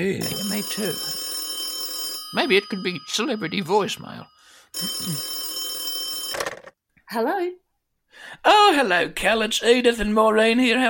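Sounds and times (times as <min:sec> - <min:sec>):
speech: 0:00.0 - 0:01.2, 0:02.3 - 0:05.4, 0:07.1 - 0:10.8
telephone ringing tone: 0:00.2 - 0:06.8.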